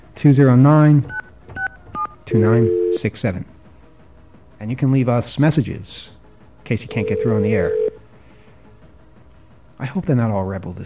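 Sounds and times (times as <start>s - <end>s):
speech: 0.2s - 1.2s, 2.3s - 3.5s, 4.6s - 7.8s, 9.8s - 10.8s
telephone keypad tones dialing a voicemail number: 1.0s - 3.0s, 6.9s - 7.9s.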